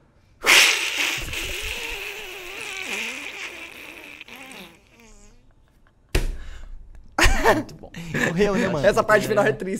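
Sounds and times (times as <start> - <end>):
long wavering, sliding vocal cry: 0.4 - 5.4
voice imitating a cartoon duck tumbling off a cliff: 0.4 - 5.5
abrupt noisy bursts: 0.5 - 4.9
speech: 7.5 - 9.7.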